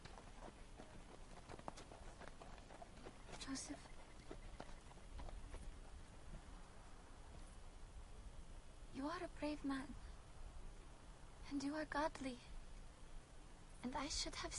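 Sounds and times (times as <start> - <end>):
donkey hooves clip-clopping while ridden: 0.0 - 7.6
low outdoor hiss: 0.0 - 14.5
speech: 3.5 - 4.0, 9.0 - 10.1, 11.5 - 12.5, 13.8 - 14.5.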